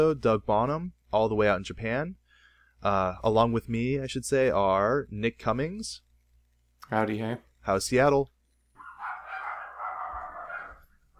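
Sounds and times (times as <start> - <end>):
speech: 0.0 - 2.2, 2.8 - 6.0, 6.9 - 8.3
several dogs barking and yipping: 8.8 - 11.1.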